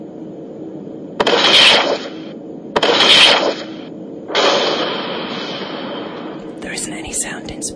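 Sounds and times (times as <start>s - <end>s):
starship firing photon torpedoes: 1.2s - 6.4s
speech: 7.6s - 7.7s.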